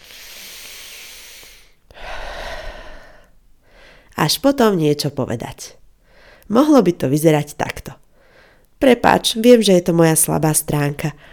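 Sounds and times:
deep breath in and out: 0:00.0 - 0:04.1, 0:06.0 - 0:06.5, 0:08.1 - 0:08.7
speech: 0:04.2 - 0:05.8, 0:06.5 - 0:08.0, 0:08.8 - 0:11.3.

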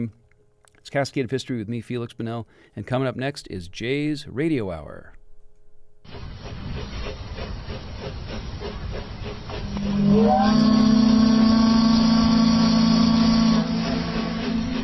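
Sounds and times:
speech: 0:00.0 - 0:00.2, 0:00.9 - 0:05.2, 0:10.2 - 0:10.8
steamship engine chugging rhythmically: 0:06.1 - 0:14.8
loud deep steamship steam whistle blast: 0:08.5 - 0:14.8.

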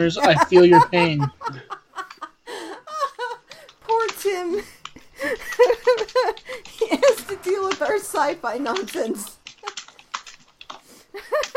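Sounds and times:
speech: 0:00.0 - 0:01.7, 0:07.9 - 0:09.4
laughter: 0:00.0 - 0:03.6, 0:05.0 - 0:07.7, 0:11.2 - 0:11.5
typing on a computer keyboard: 0:03.4 - 0:11.5.

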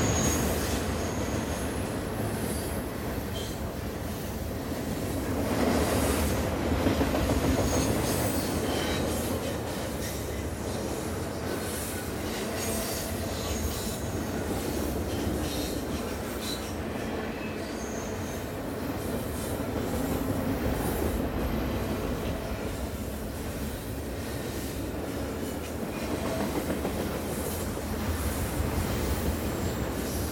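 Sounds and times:
squealing train brakes on a bend: 0:00.0 - 0:01.6, 0:17.4 - 0:18.4
long tanker train rolling past on a curve: 0:00.0 - 0:30.3.

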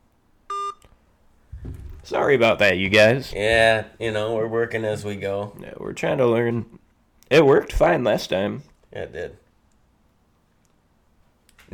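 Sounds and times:
electronic phone call beep: 0:00.5 - 0:00.8
speech: 0:02.0 - 0:09.4.

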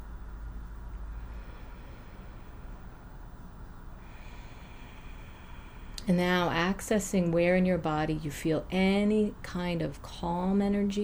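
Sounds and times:
deep breath in and blown out through the mouth during a relaxation exercise: 0:01.1 - 0:06.0
speech: 0:06.1 - 0:11.0.

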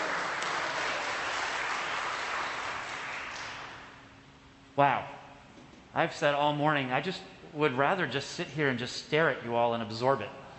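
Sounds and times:
audience applauding in church: 0:00.0 - 0:04.0
speech: 0:04.8 - 0:05.2, 0:06.0 - 0:10.4.

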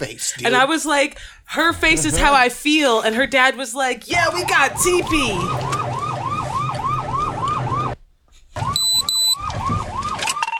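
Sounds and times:
speech: 0:00.0 - 0:06.2
emergency siren wailing: 0:04.2 - 0:08.0, 0:08.6 - 0:10.5.

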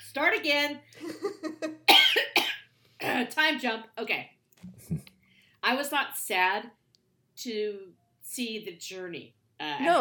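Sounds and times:
speech: 0:00.2 - 0:02.4, 0:03.0 - 0:06.8, 0:07.4 - 0:09.9
person coughing: 0:01.9 - 0:03.3.

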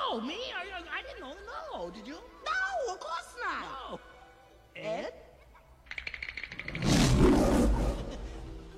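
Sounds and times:
speech: 0:00.2 - 0:04.1
lion roaring with rattling growl pulses: 0:06.7 - 0:08.3.

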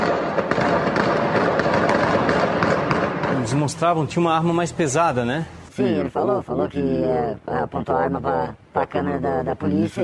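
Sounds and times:
rapid gunfire: 0:00.0 - 0:03.7
speech: 0:03.6 - 0:10.0.

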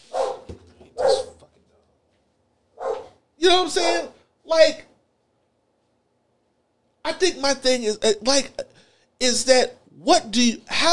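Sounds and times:
dog barking: 0:00.0 - 0:01.4, 0:02.8 - 0:03.2
speech: 0:03.5 - 0:04.9, 0:07.2 - 0:10.9.

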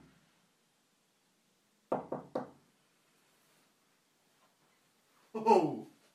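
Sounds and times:
quick knocks: 0:01.9 - 0:02.6
speech: 0:05.4 - 0:05.8.

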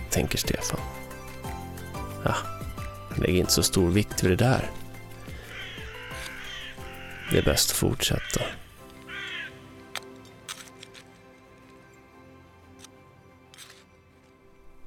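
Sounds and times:
speech: 0:00.1 - 0:01.0, 0:02.2 - 0:02.6, 0:03.2 - 0:04.8, 0:07.3 - 0:08.6
flock of birds cawing as they fly off: 0:05.1 - 0:09.7.

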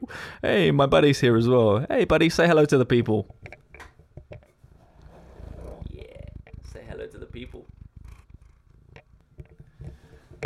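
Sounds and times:
speech: 0:00.1 - 0:03.5
domestic cat purring softly: 0:04.3 - 0:10.4.

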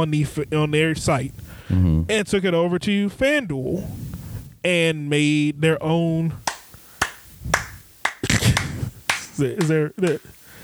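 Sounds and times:
speech: 0:00.0 - 0:06.4, 0:09.4 - 0:10.4
sharp hand claps: 0:06.4 - 0:10.5.

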